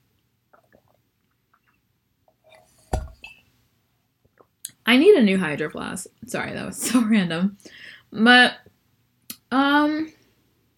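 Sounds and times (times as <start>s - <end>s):
sipping and gulping from a water bottle: 0.4s - 3.4s, 4.3s - 4.8s
speech: 4.9s - 8.7s, 9.5s - 10.2s.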